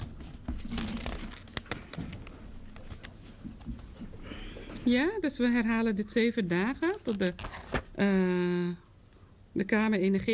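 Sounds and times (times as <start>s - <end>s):
sheet of paper being handled and crinkled: 0.3s - 3.2s, 6.8s - 8.0s
speech: 4.8s - 8.8s, 9.6s - 10.3s.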